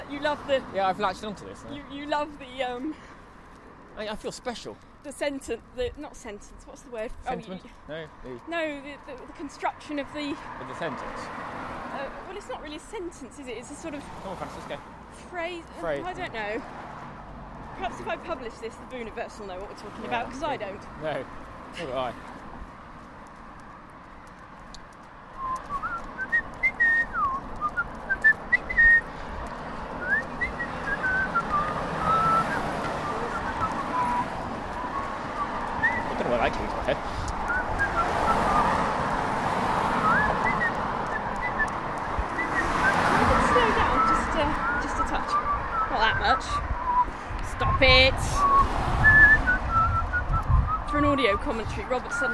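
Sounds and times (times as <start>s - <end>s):
steady noisy outdoor background: 0.0s - 52.3s
speech: 0.2s - 3.1s, 4.0s - 16.9s, 17.8s - 22.4s
person whistling a wandering tune: 25.4s - 29.1s, 30.0s - 36.2s, 37.5s - 38.8s, 40.0s - 41.8s, 42.4s - 51.4s.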